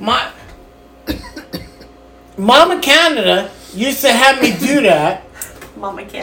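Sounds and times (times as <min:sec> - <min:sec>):
speech: 0:00.0 - 0:00.3, 0:02.4 - 0:05.2, 0:05.8 - 0:06.2
person coughing: 0:01.0 - 0:02.0.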